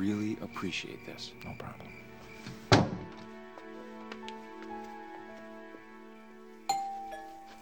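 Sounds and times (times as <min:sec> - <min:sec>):
speech: 0:00.0 - 0:02.8
doorbell chime: 0:06.7 - 0:07.5.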